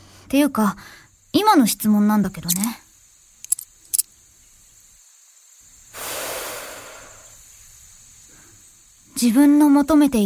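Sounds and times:
speech: 0.3 - 2.8, 9.2 - 10.2
cigarette lighter soft steady breathy hiss: 5.8 - 9.0.

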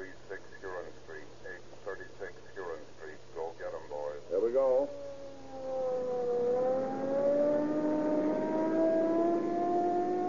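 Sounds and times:
police car siren wailing: 4.6 - 10.2
police car engine revving on cracked gasoline: 5.9 - 10.2.

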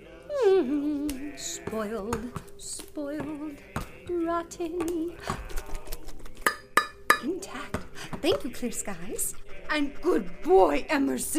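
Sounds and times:
speech: 1.4 - 5.4, 7.2 - 11.3
metal cans clinking and rattling, pulled by a dog: 5.8 - 7.3.

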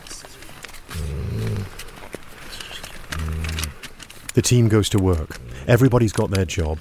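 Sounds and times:
faint clicks: 0.0 - 6.7
rustling: 0.0 - 6.7
sedated male cougar snoring: 0.9 - 1.9, 2.5 - 3.8, 5.2 - 5.9
speech: 4.4 - 6.7.

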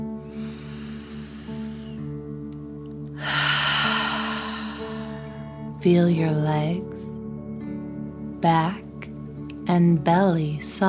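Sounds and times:
deep dragon breath exercise, inhale and forceful exhale through the mouth: 0.2 - 2.1, 3.2 - 5.7
speech: 5.8 - 7.0, 8.4 - 8.8, 9.7 - 10.8.

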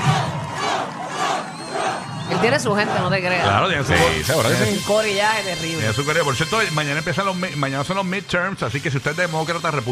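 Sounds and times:
voices shouting: 0.0 - 4.8
large crowd chanting a name in unison: 0.0 - 4.9
speech: 2.4 - 9.9.

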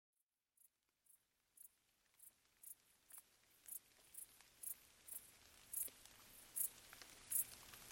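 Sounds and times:
gentle summer night rain falling on vegetation in Bad Boll: 0.6 - 7.9
crickets stridulating at night in summer along an abandoned railway track in Bad Boll: 1.1 - 7.5.

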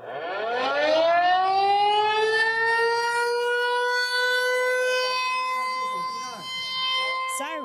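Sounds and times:
civil defense air raid siren wailing: 0.0 - 7.6.

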